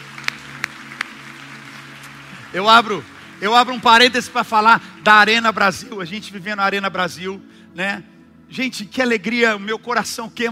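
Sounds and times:
three sharp claps of sparse audience applause: 0.0s - 5.1s
speech: 2.5s - 10.4s.

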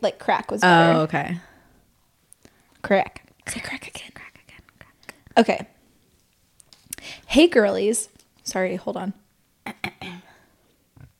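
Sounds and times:
speech: 0.0s - 1.5s, 2.8s - 4.2s, 5.4s - 5.7s, 7.0s - 9.2s
low rumbling burp: 9.6s - 10.3s.

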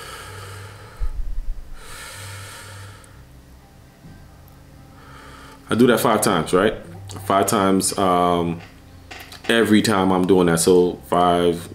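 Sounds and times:
deep breath in during a calming breathing exercise: 0.0s - 3.2s, 5.0s - 5.6s
speech: 5.7s - 8.7s, 9.5s - 11.7s.

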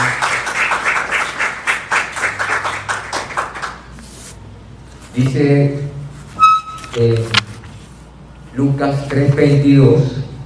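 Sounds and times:
audience applauding: 0.0s - 3.9s
speech: 5.2s - 5.9s, 7.0s - 7.4s, 8.6s - 10.3s.

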